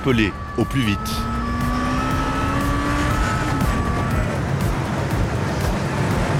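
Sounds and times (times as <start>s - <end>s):
speech: 0.0s - 1.3s
road and traffic noise: 0.0s - 6.3s
souped-up sports car engine roaring at full throttle near the quays: 0.0s - 6.3s.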